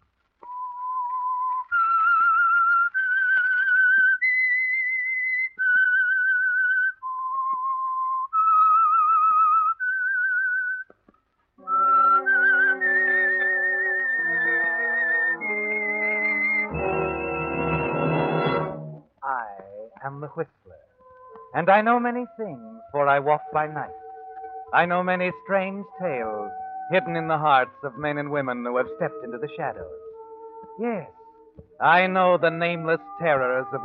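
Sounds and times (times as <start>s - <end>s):
lone whistler carrying a slow eerie melody of long held notes: 0.4s - 10.9s, 11.6s - 18.1s, 22.0s - 31.5s
swelling orchestral chord: 11.6s - 19.0s
speech: 20.4s - 20.6s, 21.6s - 24.0s, 24.7s - 30.0s, 30.8s - 31.2s, 31.8s - 33.8s.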